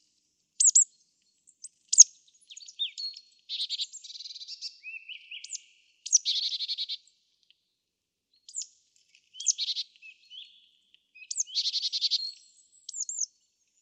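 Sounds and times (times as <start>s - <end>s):
marsh tit Poecile palustris calling: 0.6s - 0.8s, 1.9s - 7.0s, 11.2s - 13.3s.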